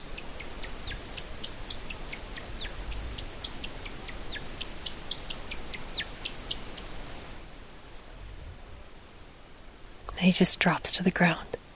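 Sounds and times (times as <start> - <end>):
male bird chirping during descending courtship display flight: 0.0 - 7.1
hiss: 0.0 - 11.7
speech: 10.3 - 11.6.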